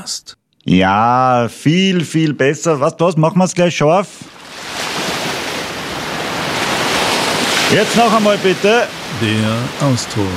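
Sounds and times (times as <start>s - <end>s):
speech: 0.0s - 5.0s, 7.7s - 10.3s
rushing surf of ocean waves: 4.3s - 10.3s.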